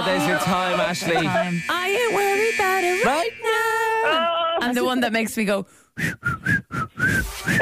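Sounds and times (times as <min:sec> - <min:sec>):
speech: 0:00.1 - 0:07.5
piercing whistled tune: 0:00.6 - 0:04.2, 0:06.0 - 0:07.5.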